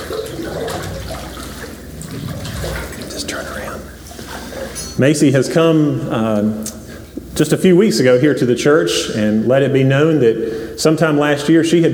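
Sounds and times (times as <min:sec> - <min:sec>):
water sloshing as person enters church baptistry: 0:00.0 - 0:05.0
speech: 0:05.0 - 0:06.8, 0:07.4 - 0:11.9.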